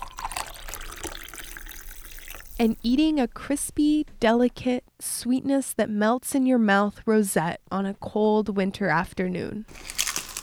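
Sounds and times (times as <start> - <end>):
coffee pouring into a cup: 0.0 - 2.8, 9.7 - 10.4
speech: 2.6 - 10.0.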